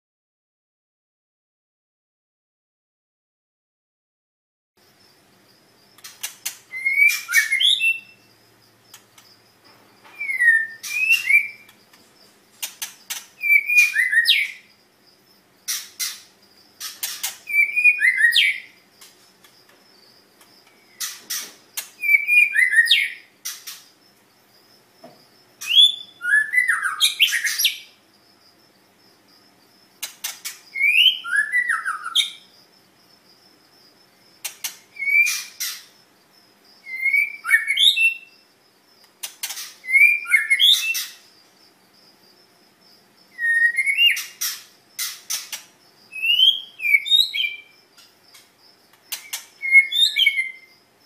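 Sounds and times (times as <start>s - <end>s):
chich choe bird singing: 5.8s - 14.9s, 15.6s - 19.0s, 19.6s - 28.0s, 30.0s - 32.6s, 33.8s - 36.0s, 36.7s - 38.6s, 39.2s - 41.5s, 43.3s - 48.5s, 49.1s - 51.0s.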